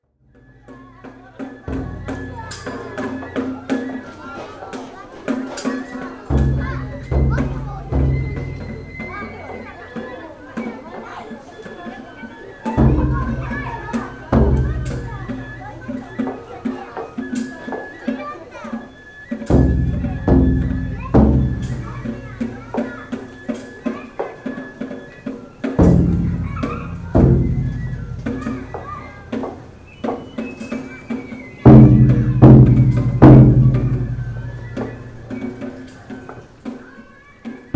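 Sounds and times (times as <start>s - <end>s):
taiko drums for a mikoshi procession: 0.3s - 10.7s, 12.6s - 18.0s, 18.9s - 36.8s.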